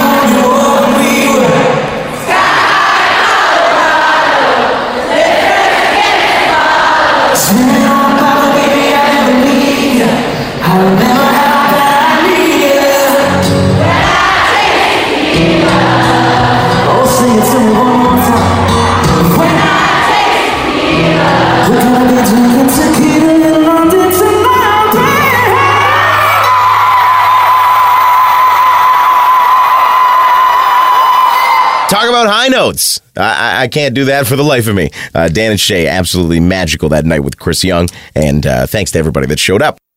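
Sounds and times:
concert crowd singing along en masse: 0.0 - 26.6
live concert crowd cheering and whooping: 13.7 - 22.0, 24.3 - 31.9
speech: 32.7 - 39.8.

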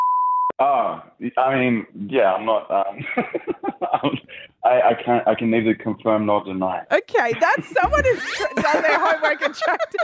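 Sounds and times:
censor bleep: 0.0 - 0.5
speech: 0.6 - 10.0
laughter: 7.3 - 10.0.

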